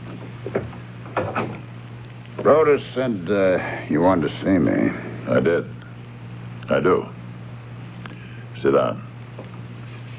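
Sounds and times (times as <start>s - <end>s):
faint steady hum: 0.0s - 10.1s
wooden door pushed shut with a thud and latch: 0.4s - 1.6s
speech: 0.5s - 0.8s, 2.5s - 5.8s, 6.7s - 7.2s, 8.6s - 9.1s.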